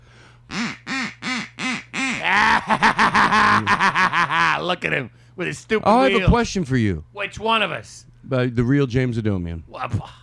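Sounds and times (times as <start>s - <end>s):
duck quacking: 0.5s - 2.5s
laughter: 2.2s - 4.6s
speech: 2.3s - 4.0s, 4.6s - 10.2s.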